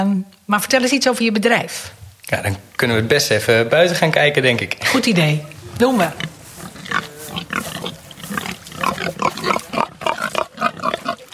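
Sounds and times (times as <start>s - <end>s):
speech: 0.0s - 6.3s
pigs grunting and snorting on a farm: 4.8s - 11.3s.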